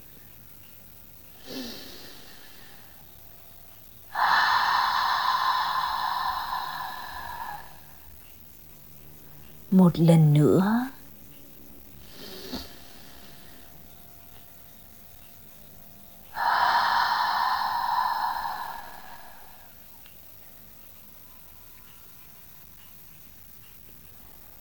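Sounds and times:
deep inhale through nose, exhale through mouth: 1.4s - 3.2s, 4.1s - 8.1s, 16.3s - 20.0s
speech: 9.7s - 10.9s.

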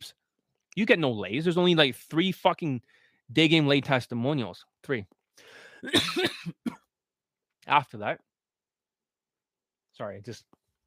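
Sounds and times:
speech: 0.8s - 6.8s, 7.7s - 8.3s, 10.0s - 10.6s
rough cough from a scratchy throat: 5.8s - 6.9s.

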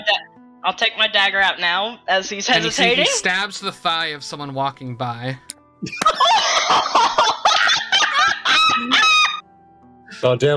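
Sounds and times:
speech: 0.1s - 7.3s, 10.2s - 10.5s
laughter: 5.8s - 9.4s
seagull calling with harsh squawking cries: 7.6s - 9.4s.

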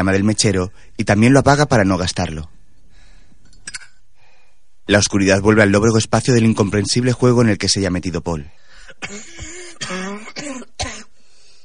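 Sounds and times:
speech: 0.0s - 2.6s, 4.9s - 10.5s
man coughing in a dry confined space: 8.9s - 11.2s.

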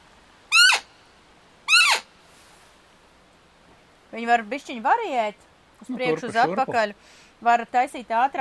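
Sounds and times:
hunter's roe deer call imitating a doe's hysterical squeal: 0.5s - 0.9s, 1.7s - 2.1s
speech: 4.1s - 8.4s.

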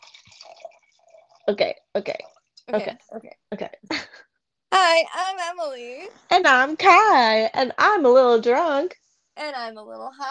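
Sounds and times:
wine pouring into a glass: 0.0s - 1.5s
wine splash: 0.0s - 2.6s
speech: 1.5s - 4.1s, 4.8s - 10.2s.

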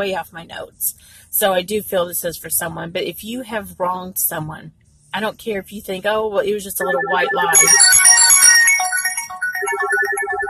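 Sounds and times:
speech: 0.0s - 8.1s
mobile phone ringtone: 6.8s - 10.4s.

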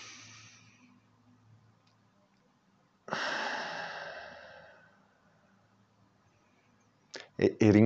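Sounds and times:
slow deep inhale and rushing exhale: 0.0s - 1.0s, 3.1s - 5.4s
speech: 7.4s - 7.8s.

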